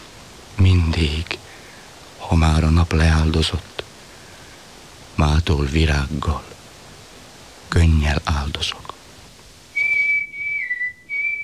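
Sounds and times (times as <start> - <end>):
speech: 0.6 - 1.4, 2.3 - 3.7, 5.2 - 6.5, 7.7 - 8.9
person whistling a warning: 9.8 - 11.4.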